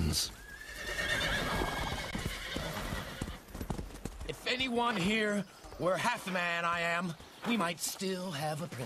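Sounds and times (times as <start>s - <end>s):
speech: 0.1s - 0.4s, 4.3s - 8.8s
horse whinnying: 0.4s - 3.5s
horse hooves clip-clopping on hard ground on a forest track: 1.5s - 8.8s.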